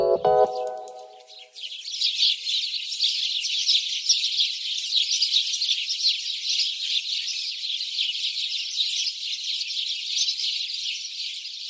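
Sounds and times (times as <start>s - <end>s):
brief tonal sound: 0.0s - 1.3s
house sparrows chirping: 0.0s - 11.6s.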